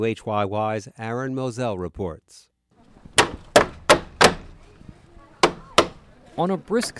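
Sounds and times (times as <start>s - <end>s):
speech: 0.0s - 2.5s, 6.4s - 6.9s
wooden shed door clatter: 3.0s - 4.7s
wooden shed doors being opened with sharp knocking bangs: 3.0s - 4.7s, 5.4s - 6.1s.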